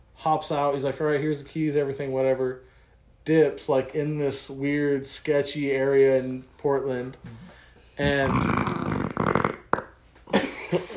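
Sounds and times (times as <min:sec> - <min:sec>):
speech: 0:00.2 - 0:08.8
person burping with a rough, low belch: 0:08.0 - 0:09.9
short throaty noises: 0:08.0 - 0:10.0.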